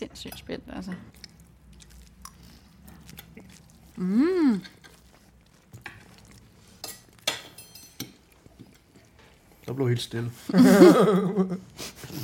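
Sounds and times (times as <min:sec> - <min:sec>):
speech: 0:00.0 - 0:01.2, 0:04.0 - 0:04.8, 0:09.7 - 0:12.2
soft chewing: 0:00.8 - 0:09.8
person humming appreciatively: 0:04.0 - 0:04.8
cutlery clinking against plates: 0:06.8 - 0:08.3.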